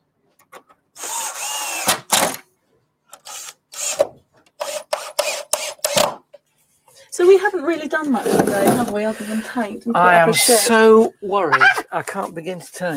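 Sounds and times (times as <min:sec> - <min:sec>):
drill boring into bamboo before screwing: 0:01.0 - 0:02.4, 0:03.2 - 0:06.2
speech: 0:07.3 - 0:12.9.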